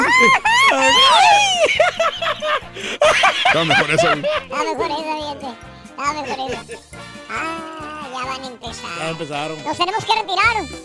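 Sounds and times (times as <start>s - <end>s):
person letting out exaggerated mock scream imitating a chef cutting his finger: 0.0s - 1.7s, 7.3s - 8.2s
laughter: 0.0s - 5.2s, 6.1s - 6.9s
speech: 3.5s - 10.8s.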